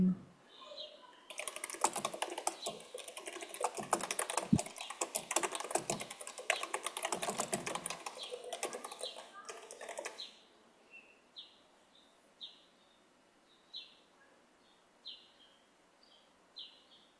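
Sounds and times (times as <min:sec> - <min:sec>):
birds chirping through an open window: 0:00.5 - 0:13.0.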